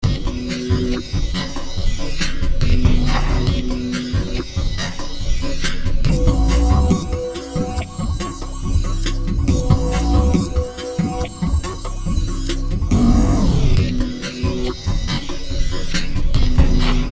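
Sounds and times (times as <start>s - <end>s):
chaotic beat: 0.0s - 17.1s
synthesizer sound: 6.1s - 14.0s.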